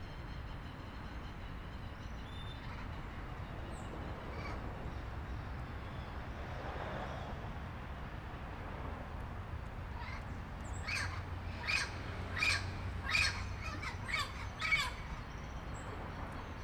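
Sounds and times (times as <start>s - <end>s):
daytime street traffic rumbling: 0.0s - 16.6s
parrot giving harsh squawks: 10.9s - 15.0s.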